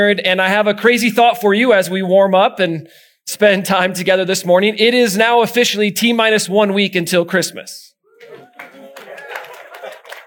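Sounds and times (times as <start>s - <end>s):
speech: 0.0s - 7.9s
church audience clapping: 8.1s - 10.2s
nervous laughter: 8.2s - 10.2s.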